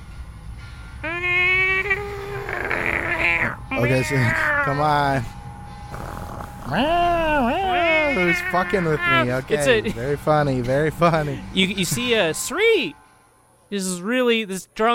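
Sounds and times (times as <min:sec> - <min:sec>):
person imitating a cat meowing: 0:01.0 - 0:04.9, 0:06.7 - 0:09.7
speech: 0:03.8 - 0:05.4, 0:06.7 - 0:13.0, 0:13.7 - 0:14.9.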